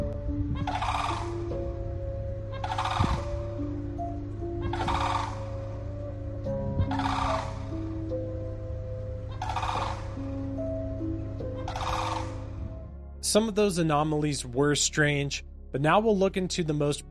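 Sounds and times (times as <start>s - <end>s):
constant low humming drone: 0.0s - 14.6s
harsh bird calls from groups of birds: 0.6s - 1.6s, 2.4s - 8.3s, 9.2s - 12.7s
speech: 13.3s - 17.0s.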